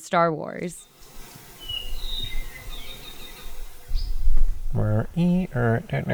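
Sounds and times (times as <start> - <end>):
speech: 0.0 - 0.9, 4.7 - 6.1
soft outdoor background: 0.0 - 6.1
apapane Hawaiian honeycreeper buzzy warbling calls: 0.7 - 6.1
apapane Hawaiian honeycreeper whistled notes: 0.8 - 4.6.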